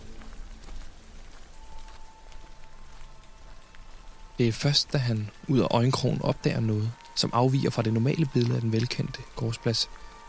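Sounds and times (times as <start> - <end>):
heavy rain pouring: 0.0 - 10.2
speech: 4.4 - 10.1.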